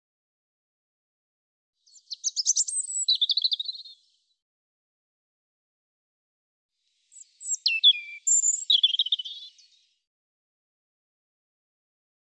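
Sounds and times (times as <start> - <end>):
European robin singing: 1.9 - 4.1, 7.0 - 10.0.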